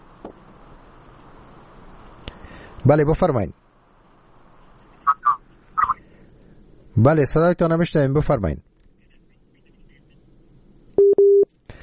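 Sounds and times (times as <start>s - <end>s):
speech: 2.8s - 3.6s, 7.0s - 8.7s
telephone busy-signal beeps after call disconnects: 11.0s - 11.5s.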